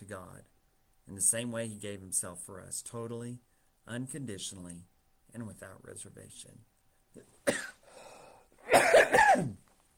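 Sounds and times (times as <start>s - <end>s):
speech: 0.1s - 7.7s
person coughing: 7.4s - 9.6s
raspy inhale: 7.8s - 8.6s.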